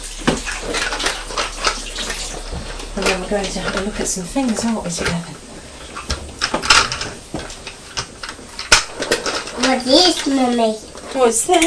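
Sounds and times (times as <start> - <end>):
water splashing: 0.0 - 9.0
hands washed under running tap water: 0.0 - 11.6
speech: 3.0 - 5.5, 9.8 - 11.6.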